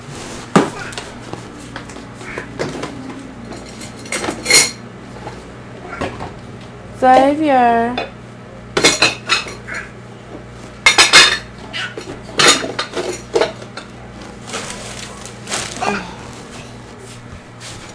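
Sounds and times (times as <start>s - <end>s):
low hum: 0.0s - 17.9s
dishes and cutlery clattering: 2.6s - 4.8s, 8.8s - 9.7s, 10.8s - 13.9s
speech: 7.0s - 8.1s.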